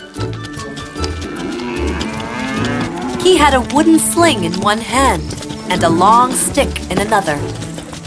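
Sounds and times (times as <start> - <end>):
outdoor noise: 0.0 - 8.0
several cows mooing: 0.5 - 6.8
speech: 3.3 - 7.7.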